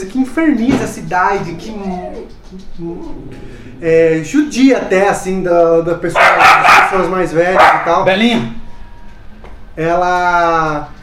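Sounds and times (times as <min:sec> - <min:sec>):
speech: 0:00.0 - 0:08.6, 0:09.8 - 0:11.0
steady noise: 0:00.0 - 0:11.0
dog whining and whimpering: 0:01.8 - 0:03.4.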